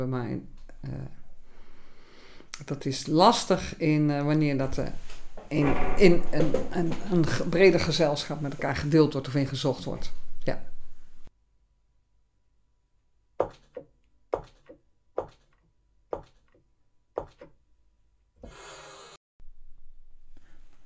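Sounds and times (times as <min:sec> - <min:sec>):
speech: 0:00.0 - 0:01.2, 0:02.6 - 0:10.7
sharp knocks on wood: 0:14.4 - 0:15.4, 0:17.2 - 0:17.5.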